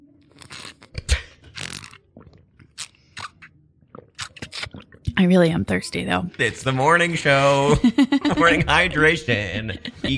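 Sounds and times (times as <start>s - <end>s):
person sipping a drink: 0.2s - 5.2s
wet slurping mouth noises: 0.2s - 5.2s
swallowing: 0.8s - 5.2s
speech: 5.2s - 10.1s
laughter: 7.4s - 10.1s.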